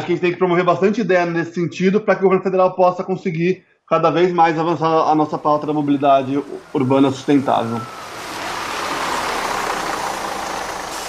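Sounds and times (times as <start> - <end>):
speech: 0.0 - 8.0
bus passing by: 5.0 - 11.0.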